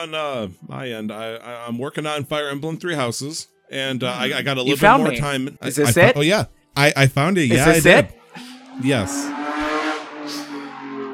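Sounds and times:
speech: 0:00.0 - 0:08.2, 0:08.8 - 0:09.4
car engine driving by outside: 0:08.1 - 0:11.1.

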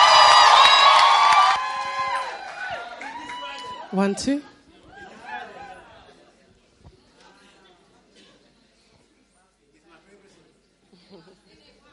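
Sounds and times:
audience hands clapping: 0:00.0 - 0:03.8
large audience cheering and shouting: 0:00.0 - 0:05.9
speech: 0:03.9 - 0:04.5.

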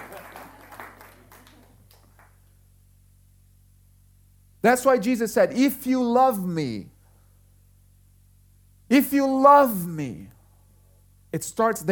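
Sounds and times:
audience applauding during a sermon: 0:00.0 - 0:02.4
speech: 0:04.6 - 0:06.9, 0:08.9 - 0:10.3, 0:11.3 - 0:11.9.

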